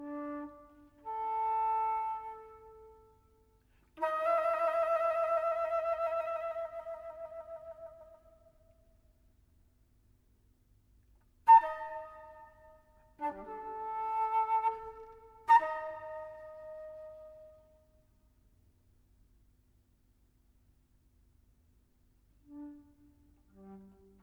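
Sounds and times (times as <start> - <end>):
flute: 0.0 - 8.6, 11.5 - 18.0, 22.4 - 24.2.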